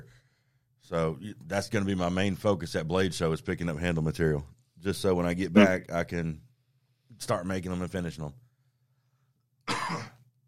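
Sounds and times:
speech: 0:00.9 - 0:06.5, 0:07.1 - 0:08.4
person coughing: 0:09.7 - 0:10.3.

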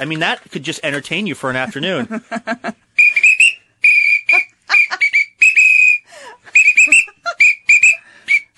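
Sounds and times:
speech: 0:00.0 - 0:02.8
shrill emergency whistle tooting out a bouncy marching tune: 0:03.0 - 0:08.5.

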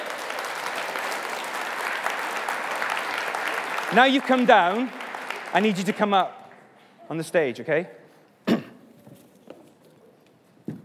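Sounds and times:
audience applause: 0:00.0 - 0:06.3
speech: 0:03.9 - 0:06.4, 0:07.1 - 0:08.0.

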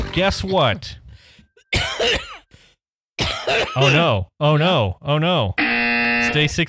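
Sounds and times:
speech: 0:00.1 - 0:01.0, 0:03.7 - 0:05.6, 0:06.2 - 0:06.6
loud harsh cough: 0:01.7 - 0:02.5, 0:03.2 - 0:04.1.

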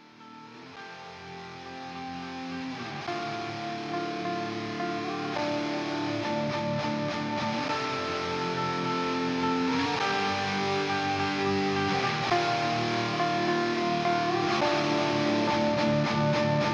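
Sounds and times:
distorted guitar-like modular synth tone with lush reverb and wobbling modulation: 0:00.0 - 0:16.7.

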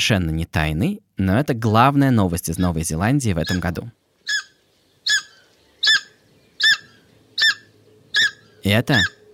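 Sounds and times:
speech: 0:00.0 - 0:04.0, 0:08.6 - 0:09.2
takahe flightless bird of New Zealand calling: 0:02.6 - 0:02.8, 0:03.4 - 0:09.3.

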